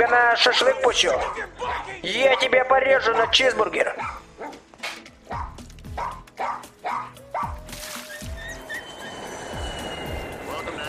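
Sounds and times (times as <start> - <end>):
speech: 0.0 - 4.2
dog barking: 0.0 - 4.7, 5.3 - 7.6.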